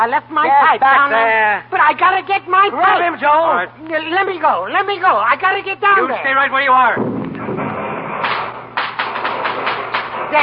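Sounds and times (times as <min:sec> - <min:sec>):
speech: 0:00.0 - 0:07.6
fireworks popping and banging: 0:07.0 - 0:10.4.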